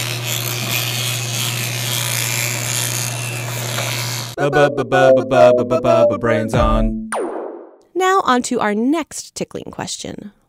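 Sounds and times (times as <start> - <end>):
electric toothbrush buzzing while brushing teeth: 0.0 - 4.4
speech: 4.4 - 7.3, 8.0 - 10.4.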